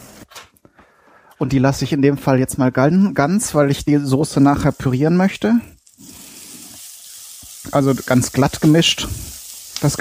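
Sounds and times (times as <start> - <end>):
speech: 1.4 - 5.8, 7.7 - 10.0
tomato paste and whole walnuts sizzling in a pan: 4.0 - 10.0.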